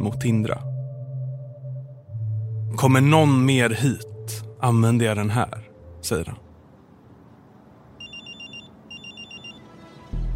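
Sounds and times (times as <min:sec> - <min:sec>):
speech: 0:00.0 - 0:00.7, 0:02.7 - 0:06.4
telephone ringing with bright trilling electronic tones: 0:08.0 - 0:09.7.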